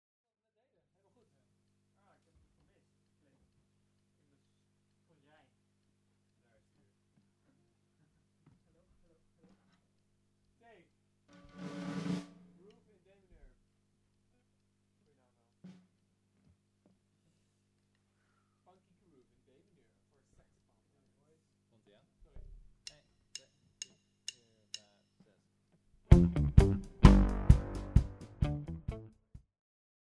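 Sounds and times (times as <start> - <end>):
musical groove in D minor: 11.3 - 12.7, 26.1 - 29.2.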